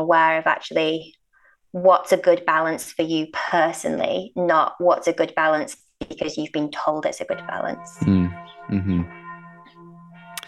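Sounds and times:
speech: 0:00.0 - 0:09.2
village church bells ringing: 0:07.3 - 0:10.4.

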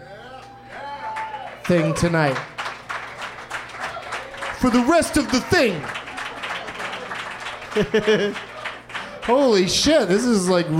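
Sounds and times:
crowd clapping steadily: 0:00.7 - 0:10.2
speech: 0:01.7 - 0:02.5, 0:04.6 - 0:06.0, 0:07.8 - 0:08.5, 0:09.3 - 0:10.7
laughter: 0:04.7 - 0:09.3.

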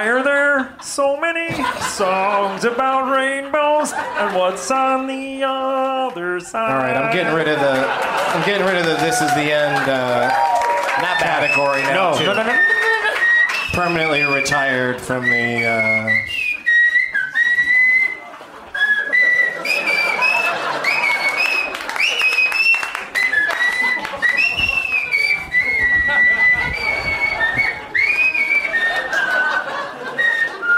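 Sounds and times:
speech: 0:00.0 - 0:12.8, 0:13.8 - 0:16.4
laughter: 0:00.4 - 0:16.2, 0:17.1 - 0:30.7
broad wash of applause and crowd noise: 0:06.8 - 0:30.7
person whistling a wavering melody: 0:11.4 - 0:18.2, 0:18.8 - 0:30.7.

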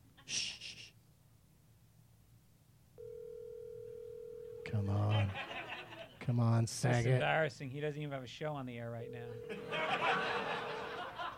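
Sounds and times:
quiet hiss: 0:00.0 - 0:11.3
phone line ringing tone: 0:03.0 - 0:05.1, 0:09.0 - 0:10.5
speech: 0:04.7 - 0:05.5, 0:06.3 - 0:10.6
laughter: 0:05.0 - 0:06.2, 0:09.4 - 0:11.3.

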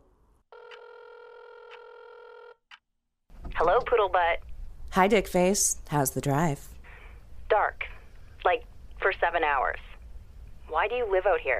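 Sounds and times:
phone ringback tone on speakerphone: 0:00.5 - 0:02.6
speech: 0:03.6 - 0:06.7, 0:07.5 - 0:07.9, 0:08.5 - 0:09.9, 0:10.7 - 0:11.5.

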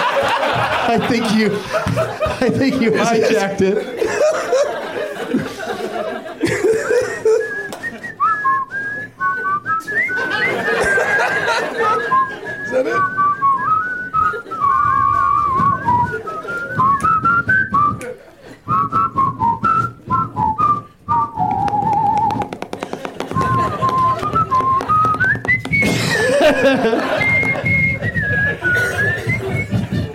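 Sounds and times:
laughter: 0:00.0 - 0:17.0, 0:17.7 - 0:18.9, 0:22.7 - 0:30.1
low noise: 0:00.0 - 0:30.1
speech: 0:00.9 - 0:04.7
person whistling a lilting march-like movie theme melody: 0:07.2 - 0:22.6, 0:23.2 - 0:30.1.

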